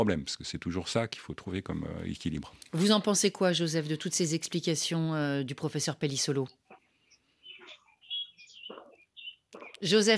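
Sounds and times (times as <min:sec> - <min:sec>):
speech: 0:00.0 - 0:06.6, 0:09.8 - 0:10.1
small birds chirping and whistling: 0:06.2 - 0:10.1.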